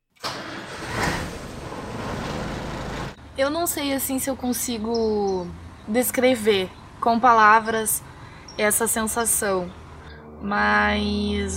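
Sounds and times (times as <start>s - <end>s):
truck engine starting with ignition key: 0.1s - 3.2s
speech: 3.4s - 9.8s, 10.4s - 11.5s.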